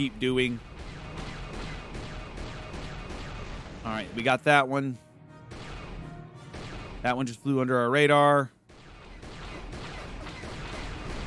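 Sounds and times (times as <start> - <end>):
speech: 0.0 - 0.8, 3.8 - 5.0, 7.0 - 8.6
blaster shots fired at flying targets in a video game: 0.0 - 4.2, 5.5 - 7.2, 8.7 - 11.2.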